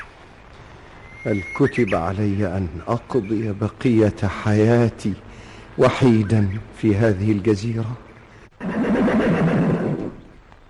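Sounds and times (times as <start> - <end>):
speech: 1.2 - 8.1
horse neighing on an island: 8.6 - 10.2.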